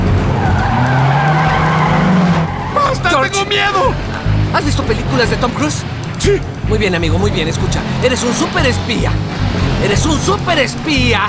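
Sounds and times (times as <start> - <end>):
heavy taxi engine roar: 0.0 - 11.2
taxi tires skidding and squealing while driven fast: 0.0 - 11.2
speech: 3.4 - 11.2.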